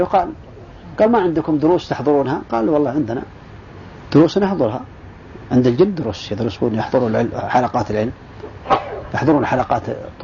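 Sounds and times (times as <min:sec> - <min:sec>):
speech: 0:00.0 - 0:03.4, 0:04.1 - 0:04.9, 0:05.5 - 0:10.2
sneeze: 0:08.6 - 0:09.1.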